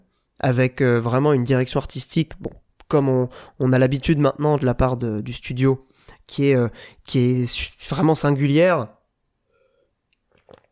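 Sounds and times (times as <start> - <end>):
speech: 0.4 - 9.0
small sip and swallow of a drink: 10.1 - 10.7.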